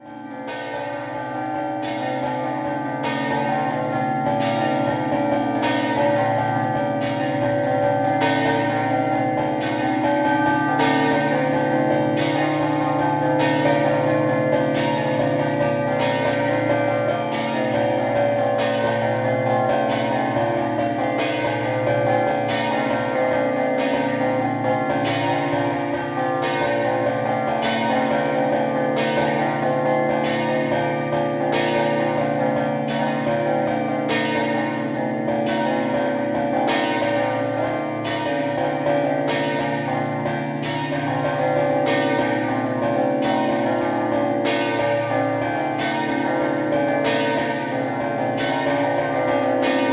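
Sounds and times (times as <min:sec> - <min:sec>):
church bells ringing in Pozzuolo del Friuli: 0:00.0 - 0:49.9.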